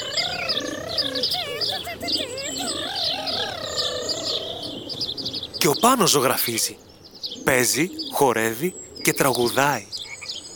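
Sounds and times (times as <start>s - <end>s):
soft cooing: 0.0s - 5.4s
several birds singing in a chorus: 0.0s - 10.5s
speech: 5.6s - 6.9s, 7.5s - 10.0s.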